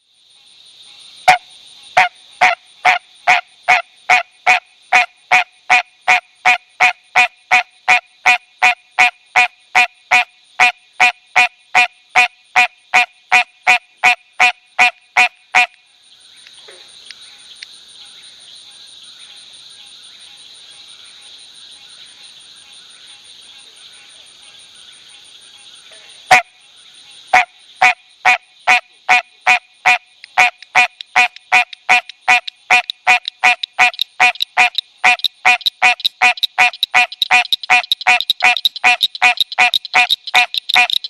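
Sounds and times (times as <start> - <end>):
Hyla cinerea frog giving a duck-like quack call: 1.2 - 1.4, 2.0 - 15.8, 26.2 - 26.5, 27.3 - 41.0.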